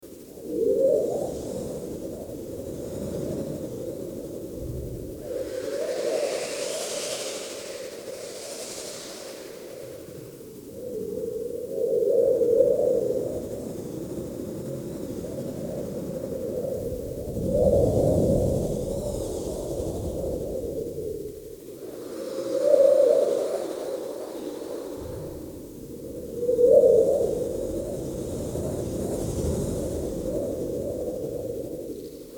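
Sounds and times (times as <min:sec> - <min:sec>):
desert wind: 0:00.0 - 0:32.3.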